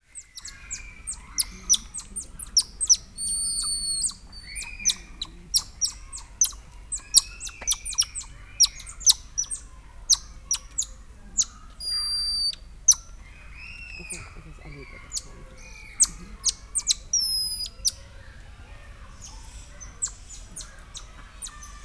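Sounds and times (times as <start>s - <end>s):
golden lion tamarin and silvery marmoset calling: 0.2s - 21.8s.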